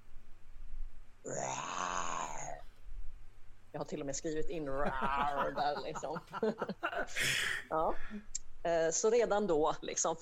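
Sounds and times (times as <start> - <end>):
person imitating a beastly bellow from an abyss: 1.3 - 2.6
speech: 3.8 - 10.2
laughter: 4.8 - 7.3.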